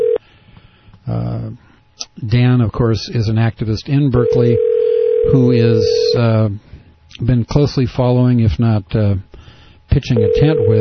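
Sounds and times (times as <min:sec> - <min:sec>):
steady telephone tone: 0:00.0 - 0:00.2, 0:04.2 - 0:06.2, 0:10.2 - 0:10.7
speech: 0:01.1 - 0:09.3, 0:09.9 - 0:10.7.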